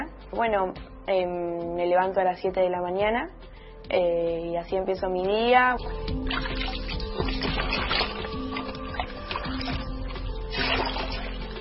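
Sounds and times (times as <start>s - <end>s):
speech: 0.3s - 6.5s
water being drawn and sloshed for bathing: 5.7s - 11.5s.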